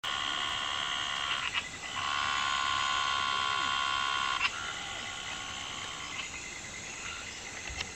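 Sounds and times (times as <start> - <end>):
Scinax jolyi frog calling: 0.1 - 7.9.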